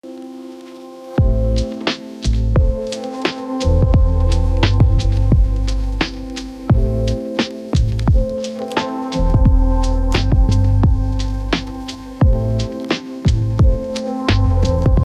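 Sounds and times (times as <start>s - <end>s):
lo-fi hip hop beat: 0.0s - 15.0s.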